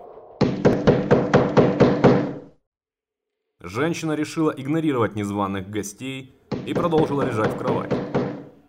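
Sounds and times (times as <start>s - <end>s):
loud heavy knocking on a door: 0.4s - 2.4s, 6.5s - 8.5s
speech: 3.7s - 8.1s.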